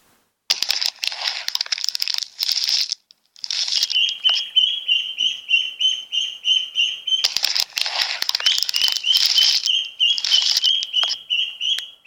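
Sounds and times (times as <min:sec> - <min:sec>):
scratchy crackling bursts: 0:00.0 - 0:04.6, 0:07.2 - 0:11.3
yellow chicks hatching from eggs peeping: 0:03.5 - 0:12.0.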